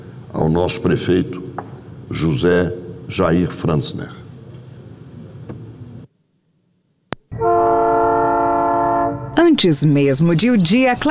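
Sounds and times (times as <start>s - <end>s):
speech: 0.4s - 4.2s, 9.6s - 11.0s
train horn blast: 7.3s - 9.4s.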